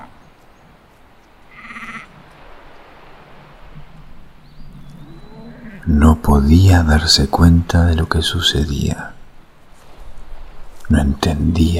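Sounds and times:
outdoor ambience of low rumble and hiss: 0:00.0 - 0:11.7
sheep from a transhumant flock bleating at night: 0:01.5 - 0:02.1
speech: 0:05.9 - 0:09.2, 0:10.9 - 0:11.7.

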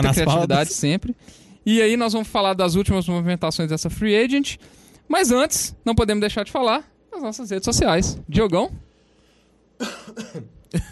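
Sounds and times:
speech: 0:00.0 - 0:08.9, 0:09.8 - 0:10.8
harsh coughing: 0:09.8 - 0:10.8.

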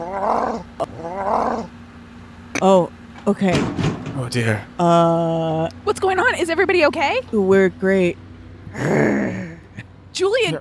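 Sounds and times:
lion roaring: 0:00.0 - 0:01.7
speech: 0:02.6 - 0:09.4.

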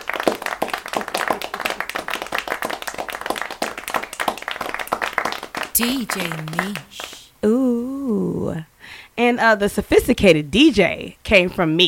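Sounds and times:
small group clapping hands in applause: 0:00.0 - 0:07.3
speech: 0:05.8 - 0:11.8.

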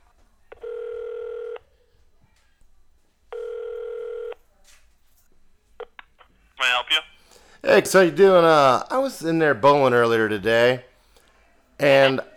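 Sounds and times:
ringback tone on a telephone line while a call is transferred: 0:00.6 - 0:01.6, 0:03.3 - 0:04.4
speech: 0:07.7 - 0:10.9, 0:11.8 - 0:12.3.

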